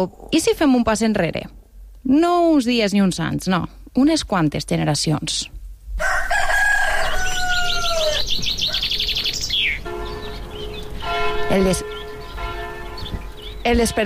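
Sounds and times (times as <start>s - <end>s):
speech: 0.0s - 5.6s, 11.5s - 12.0s, 13.6s - 14.0s
rooster crowing at dawn in a village: 6.0s - 9.3s
church bells ringing: 9.6s - 14.0s.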